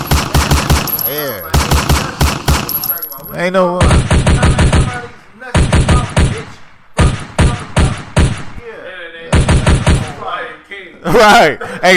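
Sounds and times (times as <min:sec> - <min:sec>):
loud gunshot sound effects firing in bursts: 0:00.0 - 0:08.6, 0:09.3 - 0:10.2
speech: 0:03.4 - 0:04.0, 0:11.0 - 0:11.9.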